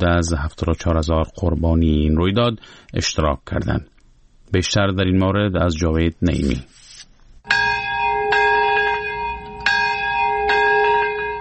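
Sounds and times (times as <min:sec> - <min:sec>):
speech: 0:00.0 - 0:03.9, 0:04.5 - 0:06.8
large bells tolling at a memorial ceremony in Nagasaki Japan: 0:07.5 - 0:11.3.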